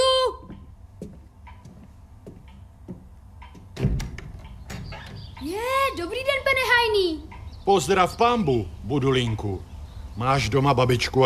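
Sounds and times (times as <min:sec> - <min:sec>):
dull knocks on a wooden door: 0:02.3 - 0:05.3
speech: 0:05.4 - 0:11.2.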